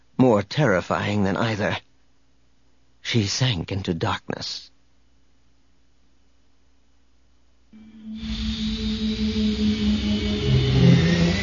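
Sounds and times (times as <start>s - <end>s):
speech: 0.2s - 1.9s, 3.0s - 4.7s
low hum: 7.8s - 11.4s
science-fiction B-Wing starfighter engine accelerating into high orbit: 7.8s - 11.4s.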